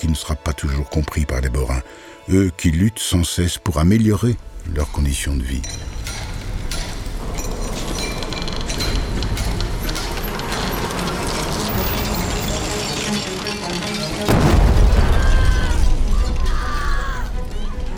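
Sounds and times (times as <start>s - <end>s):
speech: 0.0s - 6.0s
heavy sustained rumble: 4.4s - 17.9s
clattering mechanical noise: 5.6s - 15.0s
coal mine explosion at the Agrappe mine in Frameries: 14.3s - 17.0s.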